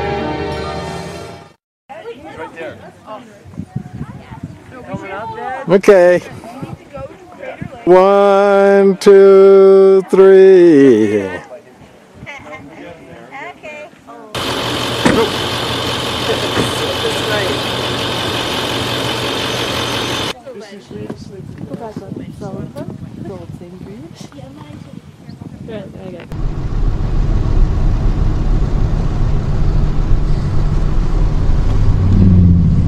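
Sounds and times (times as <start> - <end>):
speech: 2.6 - 4.0, 4.8 - 6.4, 7.9 - 11.5
vehicle engine rumbling while towing a travel trailer and boat: 14.4 - 20.4, 26.3 - 32.8.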